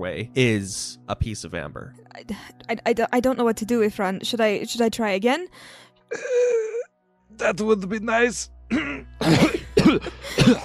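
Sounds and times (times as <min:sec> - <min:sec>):
speech: 0:00.0 - 0:06.6, 0:07.4 - 0:10.6
voice imitating a badly wounded character coughing: 0:08.7 - 0:10.6.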